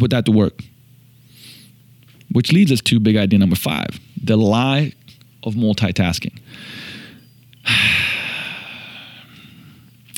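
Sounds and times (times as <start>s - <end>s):
speech: 0.0s - 0.7s, 2.3s - 6.8s
deep breath: 6.5s - 9.9s.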